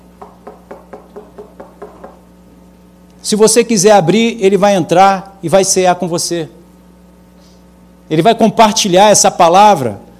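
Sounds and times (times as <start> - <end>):
knocking on a door: 0.2 - 2.2
speech: 3.2 - 6.6, 8.1 - 10.0.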